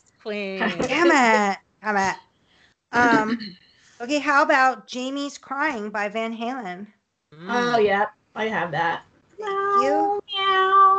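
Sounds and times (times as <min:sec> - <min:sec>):
speech: 0:00.2 - 0:02.3, 0:02.9 - 0:10.7
laughter: 0:00.6 - 0:01.5, 0:03.0 - 0:03.5, 0:07.5 - 0:08.0, 0:09.8 - 0:10.0
cat meowing: 0:09.7 - 0:10.9.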